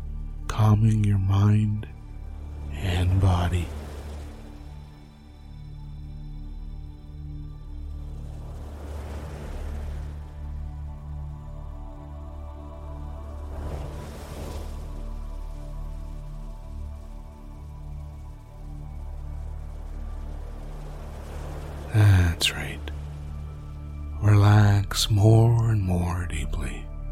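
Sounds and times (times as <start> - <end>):
speech: 0.6 - 2.0, 2.8 - 3.8
ocean waves washing on a beach: 1.2 - 26.9.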